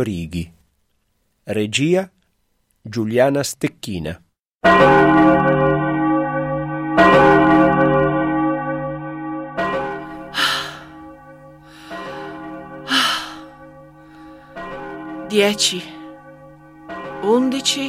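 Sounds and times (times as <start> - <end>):
speech: 0.0 - 0.6, 1.5 - 2.2, 2.8 - 5.6, 15.4 - 16.0, 17.2 - 17.8
church bell in Lugano tolling noon: 4.6 - 17.8
breathy sighs or gasps: 10.2 - 11.0, 11.6 - 14.6.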